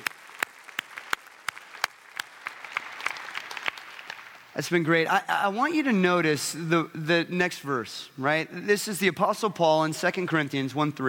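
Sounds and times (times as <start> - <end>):
audience of many people applauding: 0.0 - 4.5
speech: 4.6 - 11.0.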